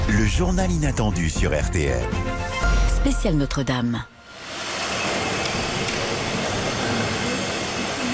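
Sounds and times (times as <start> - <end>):
speech: 0.2 - 2.4, 3.0 - 4.2
construction work roar with mechanical rumble and hiss: 4.2 - 8.1.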